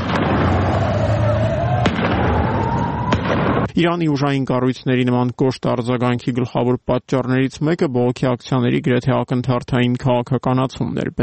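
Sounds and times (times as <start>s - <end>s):
gunfire from security forces shooting at protesters from a rooftop: 0.0s - 0.9s, 1.8s - 2.4s, 3.1s - 3.7s
sustained tonal wail: 0.1s - 3.6s
speech: 3.8s - 11.2s.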